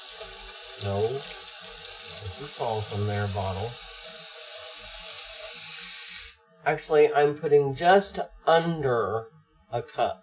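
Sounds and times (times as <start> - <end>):
warm water pouring into cake mix powder: 0.0 - 6.4
speech: 0.8 - 1.4, 2.2 - 3.9, 6.6 - 10.2.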